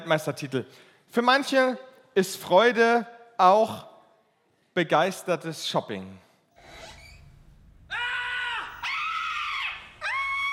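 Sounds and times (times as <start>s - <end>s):
speech: 0.1s - 3.9s, 4.8s - 6.2s
loud high-pitched joyful scream: 7.9s - 10.5s.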